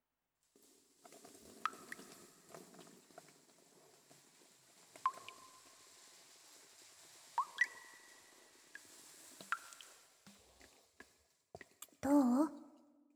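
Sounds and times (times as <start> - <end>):
fizzy soap lather being worked into hair on the head: 1.1 - 12.0
person making a brief loud vocal sound: 12.0 - 12.6.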